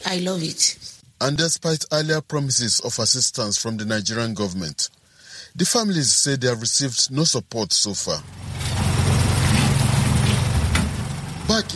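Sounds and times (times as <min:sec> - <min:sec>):
speech: 0:00.1 - 0:09.1
water tanker engine pumping water into a tank outside an apartment in a Nigerian town: 0:08.1 - 0:11.7.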